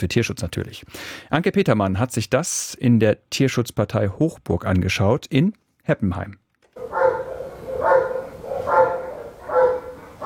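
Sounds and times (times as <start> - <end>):
speech: 0.0 - 6.4
bored Belgian shepherd dog barking in a kennel at an animal shelter in Germany: 6.8 - 10.2.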